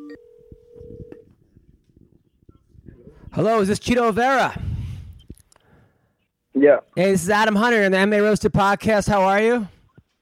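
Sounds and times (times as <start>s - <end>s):
phone dialing beeps: 0.0s - 1.3s
speech: 3.3s - 4.6s, 6.6s - 9.8s.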